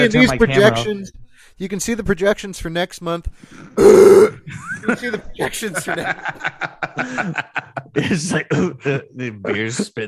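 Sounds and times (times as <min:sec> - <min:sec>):
speech: 0:00.0 - 0:10.0
person imitating a loud exaggerated burp: 0:03.8 - 0:04.4
person chuckling: 0:04.2 - 0:10.0.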